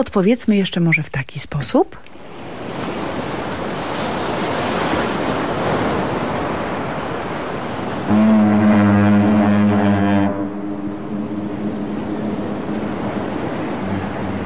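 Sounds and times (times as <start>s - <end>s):
speech: 0.0s - 2.1s
sea waves washing on a Baltic beach at Gdańsk: 2.1s - 14.4s
ship's deep horn: 7.7s - 14.4s.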